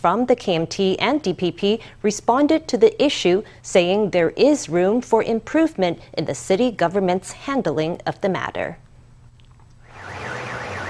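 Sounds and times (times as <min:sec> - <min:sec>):
speech: 0:00.0 - 0:08.8
multiple car alarms blaring: 0:09.8 - 0:10.8.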